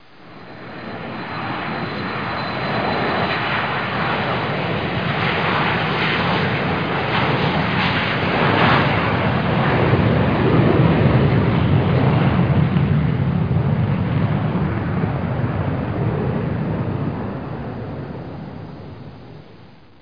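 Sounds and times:
jet flying by: 0:00.0 - 0:19.9.

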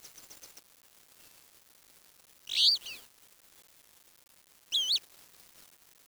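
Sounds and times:
harsh high-pitched bird calls: 0:02.5 - 0:03.0, 0:04.7 - 0:05.0.

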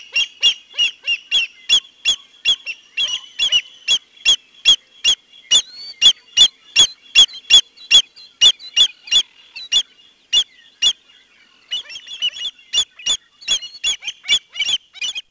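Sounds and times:
American avocet piping calls: 0:00.0 - 0:11.0, 0:11.7 - 0:15.2.

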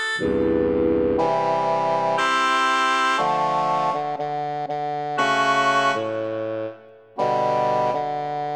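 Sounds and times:
shehnai playing: 0:00.2 - 0:08.3.

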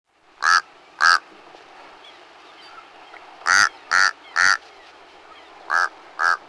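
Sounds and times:
Mexican crow calling with rough froglike croaks: 0:00.4 - 0:01.2, 0:03.4 - 0:04.6, 0:05.7 - 0:06.4.

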